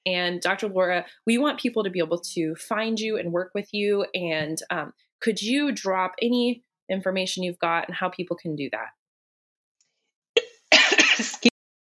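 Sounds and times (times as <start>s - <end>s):
speech: 0.0s - 9.0s, 11.2s - 11.5s
person coughing and clearing throat: 10.4s - 11.5s.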